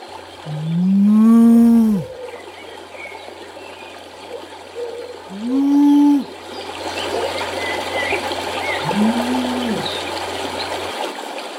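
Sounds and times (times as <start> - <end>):
steady hiss of open-air ambience: 0.0 - 11.5
cows mooing outdoors on a meadow: 0.5 - 2.1, 8.8 - 10.0.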